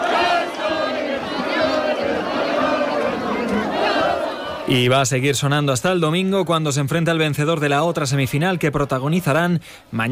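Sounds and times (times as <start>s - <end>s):
crowd cheering and shouting celebrating a football semifinal victory: 0.0s - 4.8s
speech: 4.7s - 10.1s.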